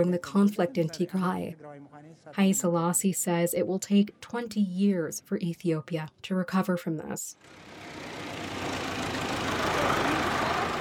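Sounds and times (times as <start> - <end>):
speech: 0.0 - 8.8
large truck engine rumbling: 7.4 - 10.7.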